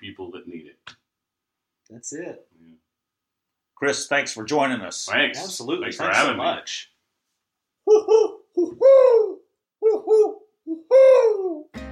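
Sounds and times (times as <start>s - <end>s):
speech: 2.0s - 2.5s, 3.8s - 6.9s
owl hooting: 7.8s - 11.7s.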